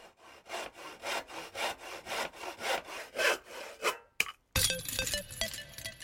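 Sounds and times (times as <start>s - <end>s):
handsaw cutting through wood: 0.0s - 4.2s.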